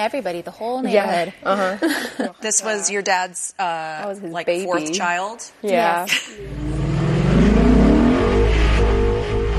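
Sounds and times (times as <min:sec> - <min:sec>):
speech: 0:00.0 - 0:06.8
car engine revving through exhaust: 0:06.4 - 0:09.5.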